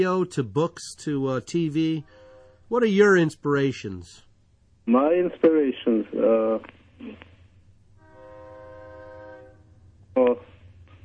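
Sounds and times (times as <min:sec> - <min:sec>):
speech: 0:00.0 - 0:07.3, 0:10.2 - 0:10.5
train horn sounding one sustained note: 0:02.0 - 0:02.7, 0:08.0 - 0:09.8.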